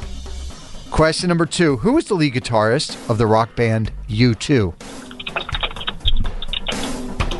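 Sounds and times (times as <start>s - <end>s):
speech: 1.0s - 5.0s
computer keyboard keys clicking: 5.0s - 7.3s.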